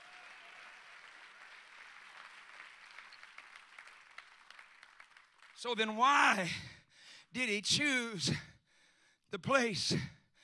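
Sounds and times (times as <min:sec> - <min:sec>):
crowd clapping: 0:00.0 - 0:06.0
speech: 0:05.6 - 0:06.7, 0:07.3 - 0:08.5, 0:09.3 - 0:10.2.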